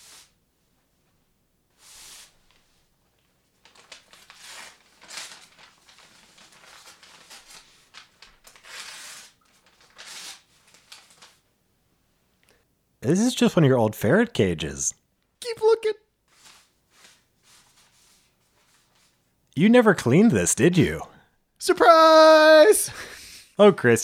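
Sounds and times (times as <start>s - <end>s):
wrapping paper crinkling and tearing as a present is unwrapped: 3.6s - 11.4s
speech: 13.1s - 15.0s, 19.6s - 23.0s, 23.6s - 24.0s.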